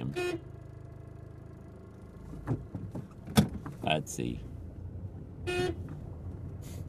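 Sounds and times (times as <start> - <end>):
car horn toot: 0.0 - 0.6, 5.4 - 5.9
low car engine rumble: 0.0 - 6.8
speech: 0.2 - 0.5, 2.5 - 2.7, 4.0 - 4.5, 5.5 - 5.9.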